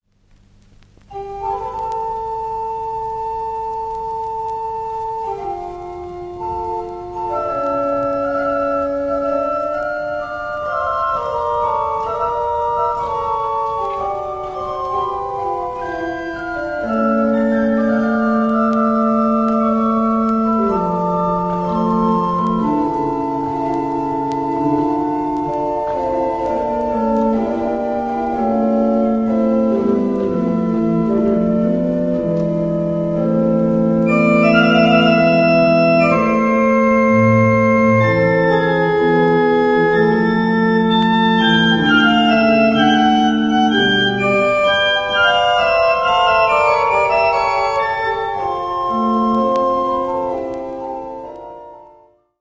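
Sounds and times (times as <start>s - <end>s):
organ piece for a double organ: 0.6s - 52.3s.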